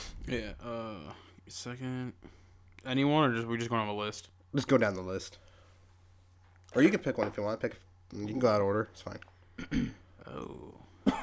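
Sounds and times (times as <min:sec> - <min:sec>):
speech: 0:00.3 - 0:05.4, 0:06.7 - 0:11.2
sick person coughing: 0:09.6 - 0:10.0, 0:11.1 - 0:11.2.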